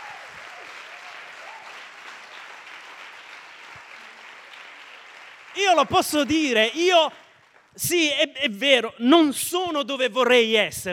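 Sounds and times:
church congregation applauding: 0.0 - 8.2
speech: 5.6 - 7.2, 7.8 - 10.9.

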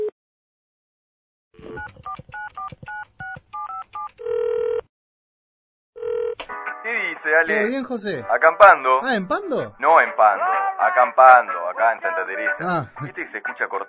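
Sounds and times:
telephone keypad dialing tones as a call is placed: 1.6 - 4.8
long steady telephone tones: 1.6 - 4.9, 6.0 - 6.4
speech: 7.2 - 13.8.

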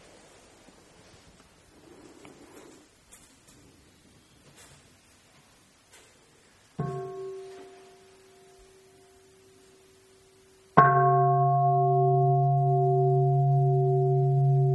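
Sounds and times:
meditation bell struck during a monastic dharma talk: 6.8 - 9.3, 10.8 - 14.7.

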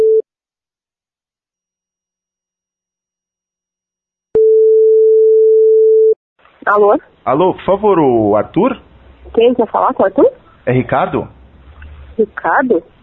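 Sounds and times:
steady low continuous telephone line tone while a call is being placed: 0.0 - 0.2, 4.4 - 6.2
speech: 6.6 - 11.4, 12.2 - 12.9.

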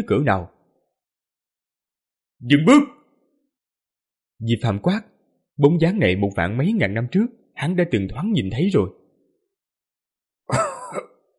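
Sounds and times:
speech: 0.0 - 0.5, 2.4 - 3.0, 4.4 - 9.0, 10.5 - 11.1
old man coughing harshly: 10.5 - 11.2.

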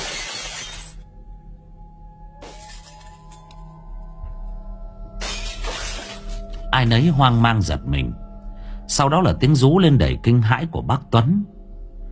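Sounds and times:
loud crash of something shattering like breaking glass: 0.0 - 1.0, 2.4 - 3.6, 5.2 - 6.7
speech: 6.8 - 8.2, 8.9 - 11.6.

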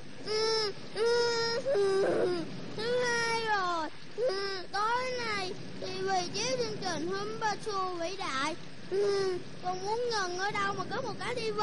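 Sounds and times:
rain beginning to fall on a car parked near the seashore: 0.0 - 11.6
child crying inside a parked car by the seashore: 0.3 - 5.2, 8.9 - 10.1
speech: 6.2 - 11.6.

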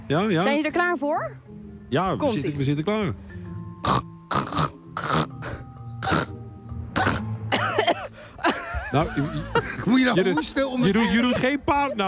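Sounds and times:
speech: 0.1 - 4.1, 8.9 - 12.0
rough voiced throat-clearing and groaning noises: 3.8 - 8.1
voice imitating a phlegmy smoker's cough: 6.0 - 6.4, 7.0 - 8.1
laughter: 7.6 - 12.0.

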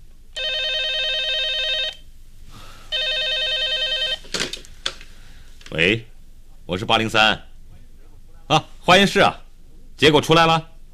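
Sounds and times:
telephone ringing with an electronic trill: 0.4 - 2.0, 2.9 - 4.2
speech: 5.7 - 6.1, 6.7 - 7.5, 8.5 - 9.4, 10.0 - 10.7.

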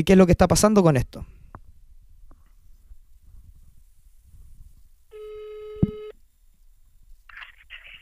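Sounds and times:
speech: 0.0 - 1.3
buzzing telephone call tone before being answered: 5.1 - 6.2.

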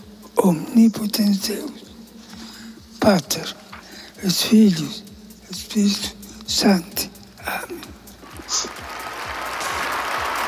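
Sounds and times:
speech: 0.4 - 1.9, 3.1 - 3.6, 4.2 - 7.9
crowd applauding in St Peter's Square after the Easter Sunday blessing: 8.3 - 10.4.

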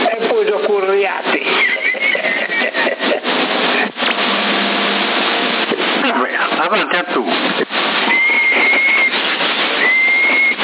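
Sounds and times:
hissy noise-filled CB radio channel: 0.0 - 10.6
laughter: 0.2 - 4.0
speech: 0.4 - 1.7, 6.7 - 7.7
person whistling over 27 MHz CB radio: 8.0 - 10.6.

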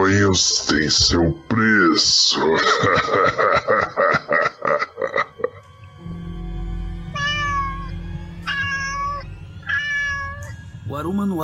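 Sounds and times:
low steady droning background: 0.0 - 11.4
speech: 0.1 - 3.7
laughter: 2.4 - 5.7
cat meowing sound effect: 7.1 - 10.6.

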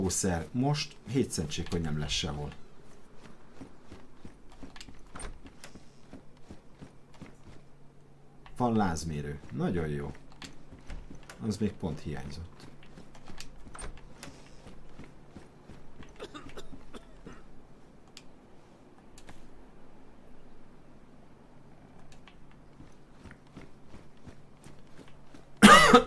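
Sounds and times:
speech: 0.0 - 2.6, 8.6 - 10.2, 11.4 - 12.6
faint hum: 0.0 - 26.0
person coughing: 16.1 - 17.5, 25.6 - 26.0.

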